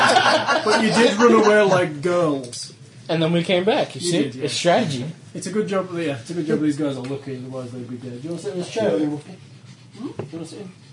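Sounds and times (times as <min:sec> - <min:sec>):
laughter: 0:00.0 - 0:01.9
speech: 0:00.6 - 0:10.8
dog panting: 0:09.0 - 0:10.9.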